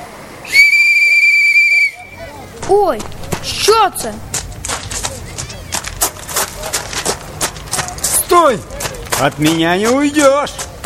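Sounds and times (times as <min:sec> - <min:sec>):
faint noise: 0:00.0 - 0:10.8
shrill whistle: 0:00.5 - 0:02.3
speech: 0:02.7 - 0:04.3, 0:08.4 - 0:10.7.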